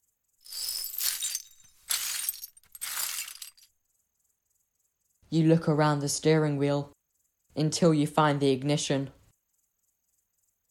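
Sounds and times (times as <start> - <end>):
broken glass swept off the driver's seat of a car: 0.4 - 3.6
speech: 5.3 - 7.0, 7.6 - 9.2.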